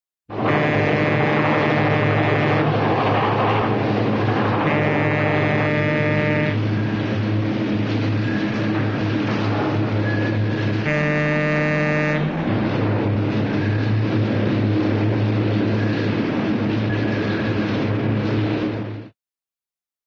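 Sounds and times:
cartoon diesel train horn: 0:00.3 - 0:02.8, 0:04.6 - 0:06.8, 0:10.8 - 0:12.4
cartoon diesel train constant running: 0:00.3 - 0:19.1.

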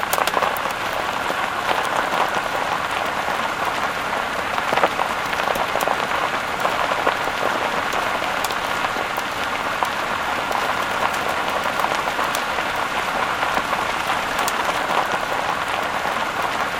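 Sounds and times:
van rolling heard from inside: 0:00.0 - 0:16.7.

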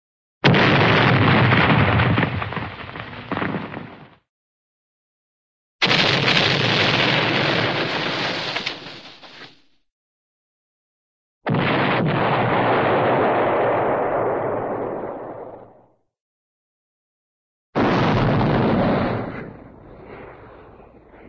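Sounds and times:
large cartoon explosion: 0:00.4 - 0:04.1, 0:05.8 - 0:09.4, 0:11.5 - 0:15.9, 0:17.8 - 0:20.2.

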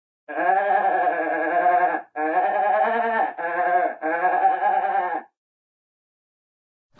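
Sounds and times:
single cartoon goat bleating: 0:00.3 - 0:05.3.

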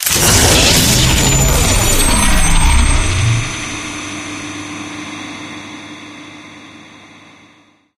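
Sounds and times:
powerup pickup effect: 0:00.0 - 0:04.0.

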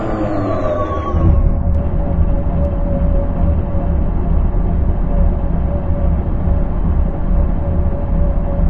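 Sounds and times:
vehicles: 0:00.0 - 0:03.6
armored personnel carrier slowing down: 0:00.0 - 0:08.6.

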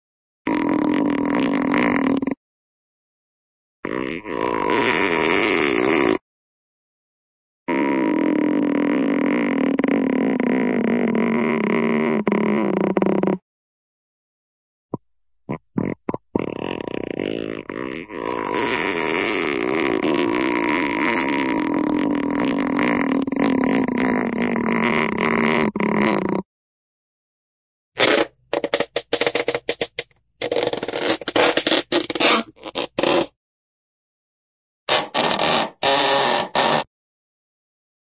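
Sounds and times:
cartoon rubber stretch: 0:00.5 - 0:02.4, 0:03.8 - 0:06.2, 0:07.7 - 0:13.4, 0:15.5 - 0:26.5, 0:28.0 - 0:33.4, 0:34.9 - 0:36.9.

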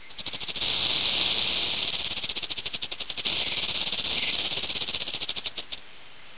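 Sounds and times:
snake: 0:00.0 - 0:05.9.

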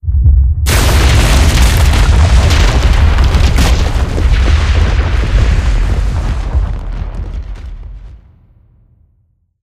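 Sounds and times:
wall collapsing: 0:00.7 - 0:08.0.

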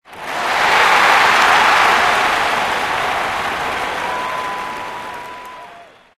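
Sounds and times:
bumper car crowd cheering: 0:00.0 - 0:06.1.

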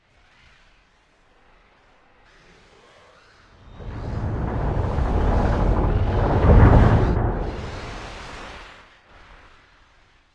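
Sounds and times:
ambience: 0:03.6 - 0:08.6.

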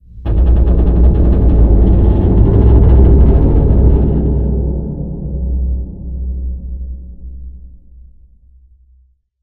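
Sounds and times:
bridge groan ambience: 0:00.2 - 0:06.3.

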